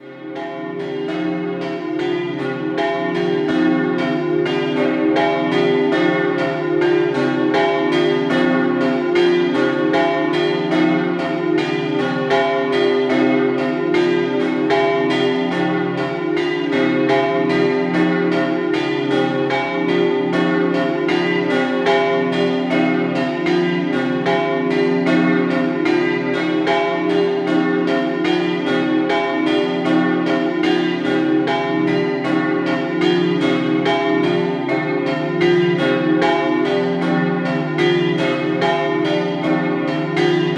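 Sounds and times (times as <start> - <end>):
bells: 0.0 - 40.5.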